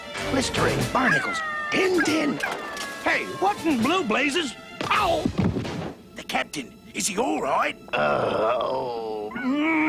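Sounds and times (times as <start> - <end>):
speech: 0.3 - 5.4, 6.3 - 9.8
dog howling: 1.0 - 3.4.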